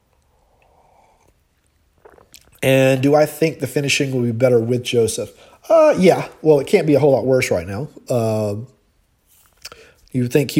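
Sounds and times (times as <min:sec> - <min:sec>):
sip of coffee: 0:00.0 - 0:03.2
faint clatter or swallow: 0:02.0 - 0:02.6
speech: 0:02.6 - 0:08.8, 0:10.1 - 0:10.5.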